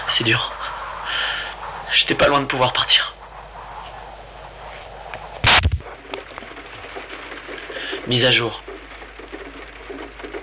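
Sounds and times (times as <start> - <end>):
light rain falling: 0.0 - 10.4
speech: 0.2 - 0.6, 1.9 - 3.2, 8.1 - 8.7
raindrops tapping: 5.6 - 10.4.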